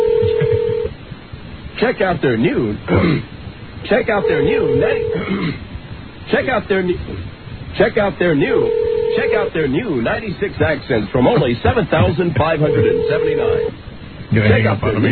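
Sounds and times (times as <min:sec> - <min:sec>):
telephone dialing tones: 0:00.0 - 0:00.9, 0:04.2 - 0:05.2, 0:08.6 - 0:09.5, 0:12.7 - 0:13.7
speech: 0:01.8 - 0:05.7, 0:06.3 - 0:15.1.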